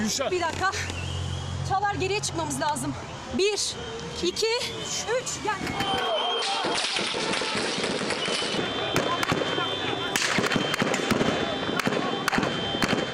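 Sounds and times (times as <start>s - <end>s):
speech: 0.1s - 1.1s, 1.7s - 8.7s
gunfire during a night-time coup attempt: 6.4s - 13.1s.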